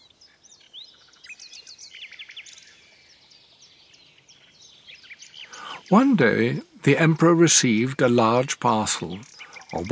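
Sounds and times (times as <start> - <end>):
nightingale singing: 0.0 - 9.8
soft hiss: 0.0 - 9.8
speech: 5.9 - 9.8.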